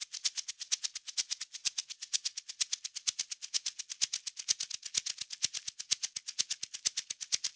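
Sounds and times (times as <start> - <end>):
percussion shaker: 0.0 - 7.5.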